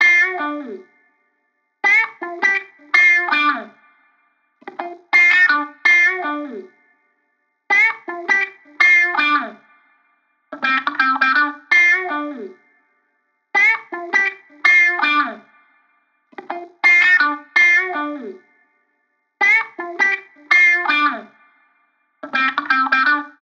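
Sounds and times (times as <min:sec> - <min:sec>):
electric guitar loop groove in D minor: 0:00.0 - 0:00.8, 0:01.8 - 0:04.0, 0:04.6 - 0:06.7, 0:07.7 - 0:09.9, 0:10.5 - 0:12.6, 0:13.6 - 0:15.7, 0:16.3 - 0:18.4, 0:19.4 - 0:21.6, 0:22.2 - 0:23.3.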